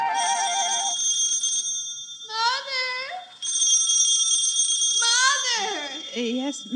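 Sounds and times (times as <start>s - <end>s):
telephone ringing with warbling electronic trill: 0.1s - 6.7s.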